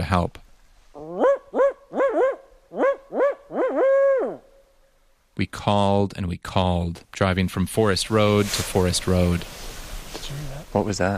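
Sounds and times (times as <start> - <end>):
speech: 0.1 - 0.4, 5.4 - 11.1
barred owl hooting in snowy woods: 1.0 - 4.5.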